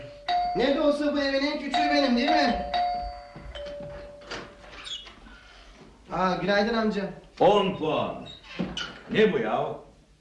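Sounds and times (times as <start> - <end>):
electronic doorbell with sustained tone ringing: 0.0 - 4.8
speech: 0.6 - 2.8, 6.1 - 8.4, 9.1 - 9.8.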